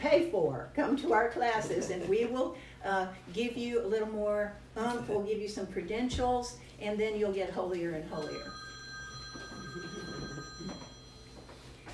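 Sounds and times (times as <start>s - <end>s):
speech: 0.1s - 8.6s
telephone ringing with a high electronic tone: 8.2s - 11.8s.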